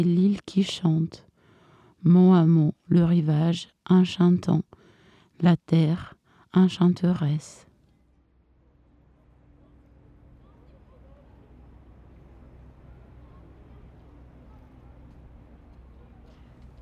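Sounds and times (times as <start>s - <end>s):
speech: 0.0s - 1.3s, 2.0s - 4.7s, 5.4s - 7.7s
broad wash of wind: 0.0s - 16.7s
deep drone of ocean liner engines heard aboard: 8.0s - 16.7s.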